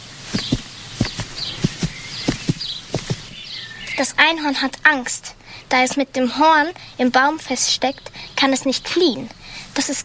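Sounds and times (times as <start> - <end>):
fast loud heartbeat: 0.3 - 3.4
speech: 4.0 - 10.0.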